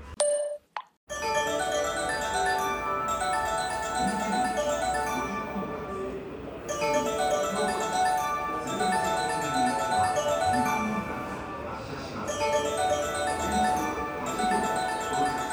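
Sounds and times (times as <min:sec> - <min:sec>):
bright tinkling electronic jingle with bell-like tones: 0:01.1 - 0:15.5.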